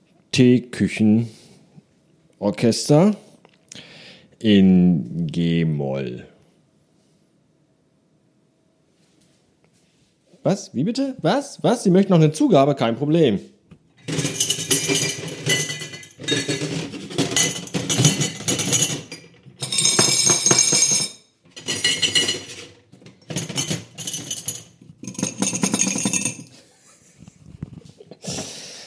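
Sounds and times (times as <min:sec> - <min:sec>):
speech: 0:00.4 - 0:01.4, 0:02.4 - 0:03.2, 0:03.8 - 0:06.3, 0:10.4 - 0:13.5
dirty dishes and cutlery rattling on a table vibrating from a fully automatic coffee machine: 0:14.0 - 0:26.5.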